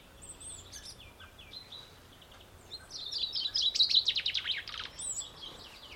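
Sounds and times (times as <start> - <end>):
Fringilla coelebs chaffinch singing: 0.0 - 5.9
soft steady background hiss: 0.0 - 5.9.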